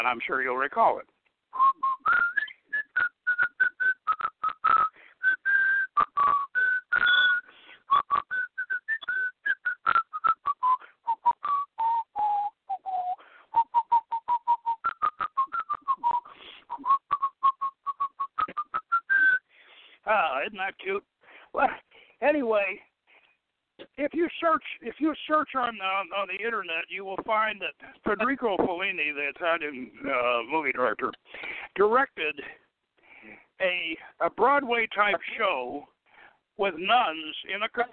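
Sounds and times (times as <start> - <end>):
speech: 0.0 - 1.2, 20.8 - 21.7, 22.3 - 22.9, 24.0 - 31.2, 31.8 - 32.6, 33.6 - 35.9, 36.6 - 37.9
person whistling a song melody: 1.5 - 19.5.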